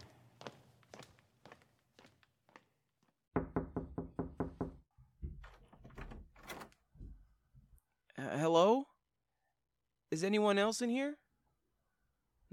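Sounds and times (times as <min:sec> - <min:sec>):
firm knocks on a door: 0:03.3 - 0:06.1
speech: 0:10.2 - 0:11.2.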